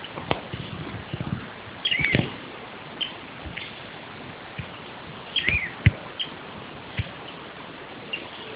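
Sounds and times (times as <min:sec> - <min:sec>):
steady background hiss: 0:00.0 - 0:08.5
Olivaceous Elaenia calling with sharp high chirps: 0:01.8 - 0:02.2, 0:05.3 - 0:06.4.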